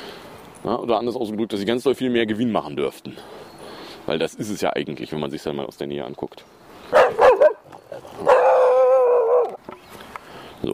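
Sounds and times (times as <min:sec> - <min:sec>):
speech: 0:00.6 - 0:03.4, 0:04.1 - 0:07.0
dog barking: 0:06.9 - 0:09.5.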